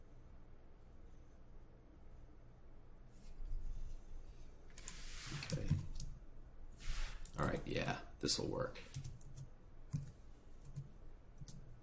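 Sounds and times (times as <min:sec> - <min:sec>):
low hum: 0:00.0 - 0:11.8
speech: 0:07.5 - 0:09.1
soft keyboard key presses: 0:08.8 - 0:11.6.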